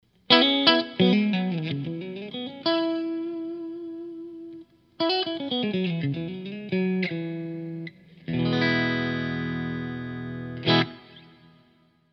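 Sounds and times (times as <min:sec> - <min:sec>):
Stratocaster electric guitar on bridge and middle pickups: 0:00.2 - 0:11.8.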